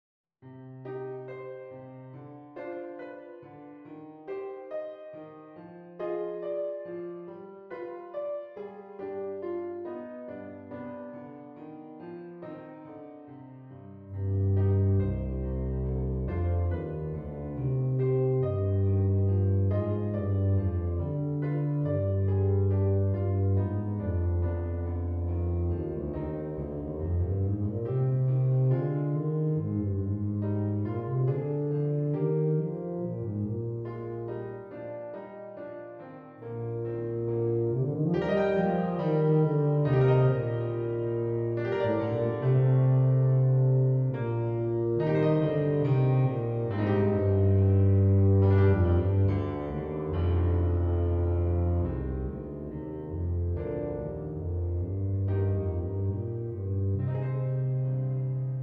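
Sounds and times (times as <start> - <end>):
E-flat or B-flat bass tuba playing: 14.1 - 34.6, 36.4 - 58.6.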